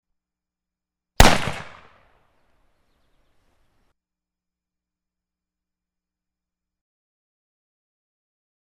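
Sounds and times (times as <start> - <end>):
WW2 era British Enfield No.4 Mk 1 rifle gunshot at 10 meters: 1.2 - 2.0.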